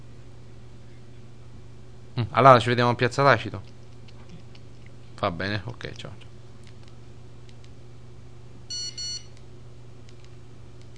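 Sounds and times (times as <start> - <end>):
faint steady hum: 0.0 - 10.9
speech: 2.2 - 3.7, 5.2 - 6.3
phone keypad key tones: 8.7 - 9.3.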